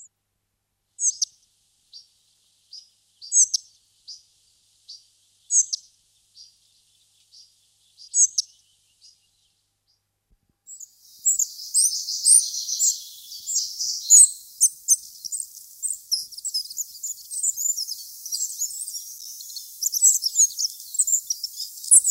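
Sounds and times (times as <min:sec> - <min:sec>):
spotted flycatcher twittering: 0:08.0 - 0:09.1, 0:10.7 - 0:22.0.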